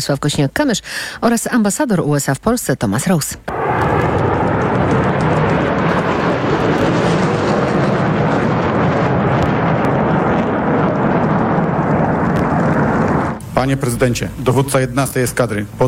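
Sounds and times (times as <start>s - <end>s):
speech: 0.0s - 4.3s, 13.6s - 15.8s
F-35 fighter jets roaring at military air base in Łask, Poland: 3.5s - 13.6s.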